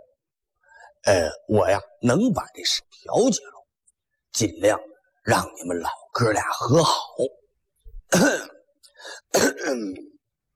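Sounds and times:
speech: 1.0s - 3.6s, 4.4s - 7.4s, 8.1s - 10.1s
man clearing his throat: 8.1s - 8.7s, 9.3s - 10.2s
man coughing: 8.1s - 10.2s.

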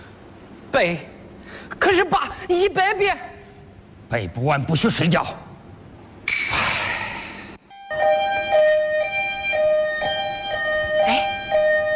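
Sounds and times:
speech: 0.7s - 3.3s, 4.1s - 5.5s
ambulance siren: 7.7s - 11.9s.

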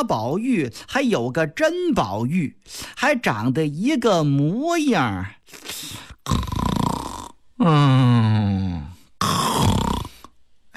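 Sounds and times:
speech: 0.0s - 6.4s, 7.6s - 8.7s
man's voice imitating light snoring: 6.2s - 10.3s.

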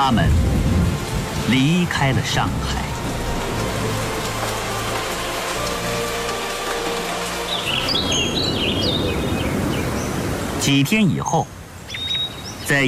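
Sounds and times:
speech: 0.0s - 0.5s, 1.5s - 2.9s, 10.6s - 11.6s, 12.7s - 12.8s
low rolling rumble of thunder: 0.0s - 4.1s, 7.8s - 10.6s
pouring rain: 0.0s - 12.8s
faint bird chirps: 11.9s - 12.8s.

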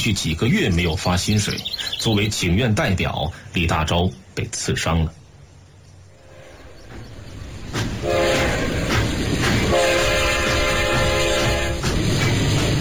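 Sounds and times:
speech: 0.0s - 5.2s
moving train rumbling: 0.0s - 12.8s
loud sustained train horn blasts: 6.2s - 12.0s
rhythmic train wheel clacks: 6.2s - 12.8s.

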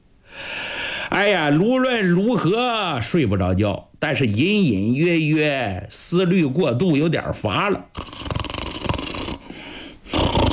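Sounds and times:
speech: 1.2s - 8.3s
storyteller imitating snoring: 7.9s - 10.5s.

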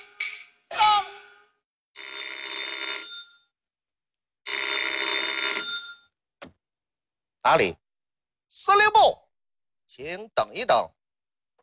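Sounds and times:
telephone bell ringing: 2.0s - 3.5s, 4.4s - 6.2s
speech: 7.4s - 7.8s, 8.6s - 9.2s, 10.0s - 11.0s.

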